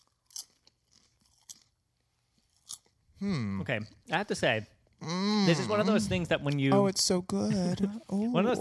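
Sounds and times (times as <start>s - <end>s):
quiet chewing of crunchy flavored popcorn: 0.0s - 3.0s
speech: 3.2s - 8.5s.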